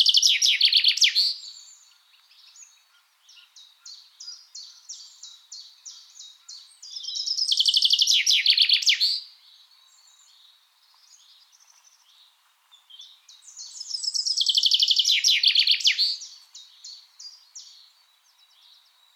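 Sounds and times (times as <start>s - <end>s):
softer high chirps from other birds: 0.0s - 9.3s, 12.8s - 17.9s
common chaffinch Fringilla coelebs song trill: 0.0s - 19.1s.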